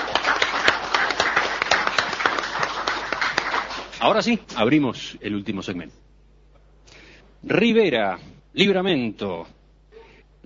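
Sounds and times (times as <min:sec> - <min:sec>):
studio audience applause: 0:00.0 - 0:04.3
speech: 0:04.0 - 0:06.0, 0:07.4 - 0:09.6.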